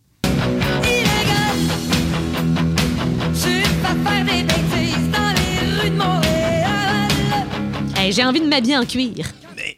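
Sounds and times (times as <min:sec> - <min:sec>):
driving guitars: 0:00.2 - 0:09.2
steady drums: 0:00.2 - 0:09.2
loud dense rock track: 0:00.2 - 0:09.5
strong vocal line: 0:00.7 - 0:01.8, 0:03.4 - 0:07.6
speech: 0:08.1 - 0:09.4.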